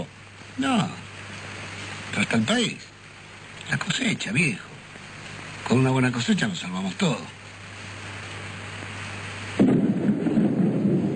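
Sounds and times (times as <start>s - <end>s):
steady rain: 0.0s - 11.1s
speech: 0.6s - 1.0s, 2.1s - 2.9s, 3.7s - 4.7s, 5.7s - 7.4s
deep rumble of thunder: 9.5s - 11.1s.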